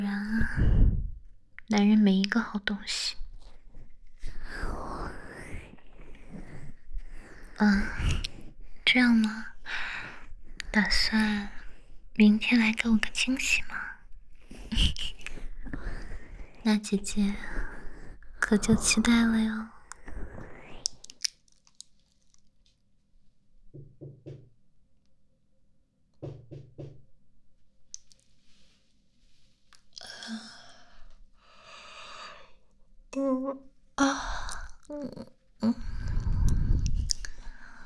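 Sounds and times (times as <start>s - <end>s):
speech: 0.0s - 1.0s, 1.7s - 3.2s, 7.6s - 8.2s, 8.9s - 9.9s, 10.8s - 11.6s, 12.2s - 13.8s, 14.7s - 15.2s, 16.6s - 17.7s, 18.5s - 19.7s, 33.2s - 35.9s
soft breathy vocal sounds: 0.0s - 21.3s, 28.4s - 37.8s
firm knocking on a door: 23.7s - 24.5s, 26.2s - 27.0s.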